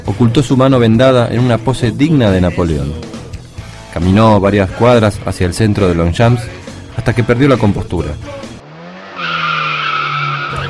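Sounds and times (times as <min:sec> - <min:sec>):
speech: 0:00.1 - 0:03.1, 0:03.9 - 0:08.4
car engine roaring at speed: 0:08.1 - 0:10.6
car tire squeal from hard braking: 0:08.7 - 0:10.6.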